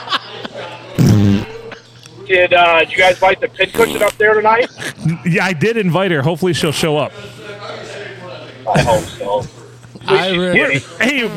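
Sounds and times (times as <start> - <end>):
laughter: 0.0 - 5.4, 8.6 - 11.3
recorded fart sound effect from a CD: 1.0 - 1.7
speech: 2.3 - 7.4, 8.7 - 11.3.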